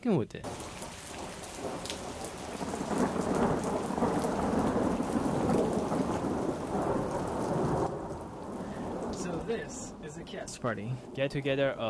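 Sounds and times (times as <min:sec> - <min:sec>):
speech: 0:00.0 - 0:00.7, 0:09.5 - 0:11.8
low rolling rumble of thunder: 0:00.4 - 0:11.8
steady heavy rain hissing in thunderstorm: 0:00.4 - 0:11.8.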